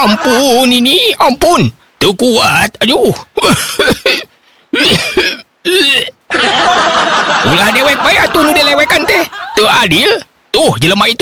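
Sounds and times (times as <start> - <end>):
laughter: 0.0 - 0.6, 6.3 - 9.7
speech: 0.0 - 11.1
elderly man's harsh throaty coughing performed by a storyteller: 3.4 - 6.2.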